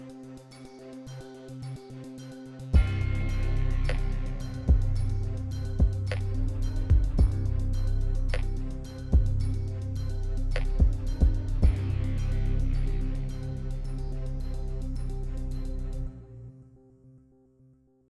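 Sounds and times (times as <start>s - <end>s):
suspense hip hop music: 0.0s - 16.6s.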